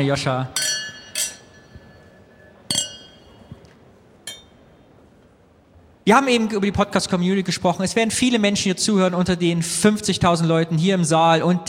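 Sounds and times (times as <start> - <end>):
speech: 0.0 - 0.6, 6.1 - 11.6
glasses clinking with bright ringing chime: 0.5 - 4.7.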